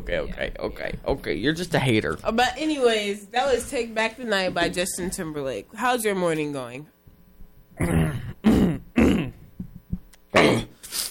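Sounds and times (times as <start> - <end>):
speech: 0.0 - 7.0, 7.8 - 8.3
person clearing throat: 7.8 - 9.5, 10.3 - 10.9
faint low grunts: 7.8 - 10.8.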